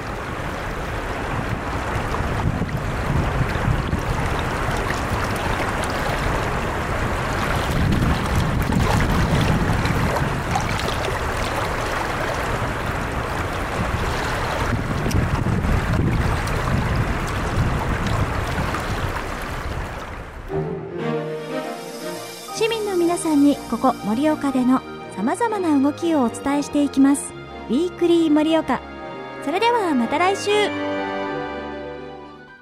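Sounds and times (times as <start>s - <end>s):
river water rushing: 0.0s - 24.4s
music: 20.5s - 32.6s
speech: 23.3s - 30.8s.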